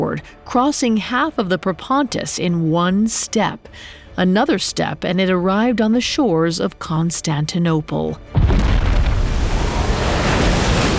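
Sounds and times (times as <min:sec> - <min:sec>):
speech: 0:00.0 - 0:08.6
dense roar of churning waves: 0:08.6 - 0:10.9
surging tsunami water flooding into a city: 0:08.9 - 0:10.9.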